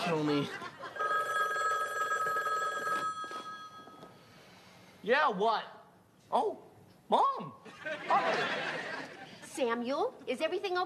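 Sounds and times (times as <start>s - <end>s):
speech: 0.0s - 0.7s, 5.0s - 10.8s
laughter: 0.0s - 1.0s, 7.7s - 9.5s
old-style telephone bell ringing: 0.8s - 4.1s.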